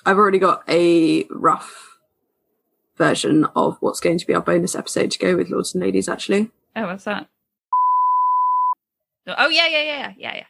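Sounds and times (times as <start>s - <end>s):
speech: 0.0s - 1.9s, 3.0s - 7.3s, 9.3s - 10.4s
censor bleep tone: 7.7s - 8.8s.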